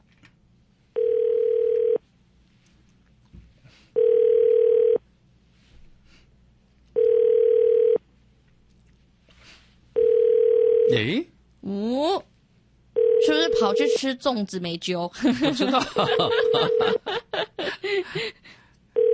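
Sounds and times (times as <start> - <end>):
phone ringback tone over a telephone line: 1.0 - 2.0, 4.0 - 5.0, 7.0 - 8.0, 10.0 - 10.9, 13.0 - 14.0, 16.4 - 17.0, 19.0 - 19.1
speech: 11.0 - 11.3, 14.0 - 17.2
laughter: 15.2 - 18.4.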